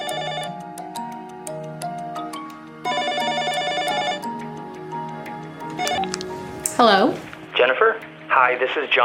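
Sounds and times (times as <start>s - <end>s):
telephone ringing with bell-like tones: 0.0s - 0.6s, 2.8s - 4.4s, 5.8s - 6.1s
speech: 6.8s - 9.0s.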